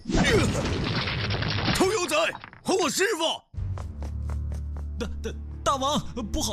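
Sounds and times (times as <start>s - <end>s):
cave door being smashed open: 0.2s - 2.7s
speech: 2.2s - 3.5s, 5.0s - 6.5s.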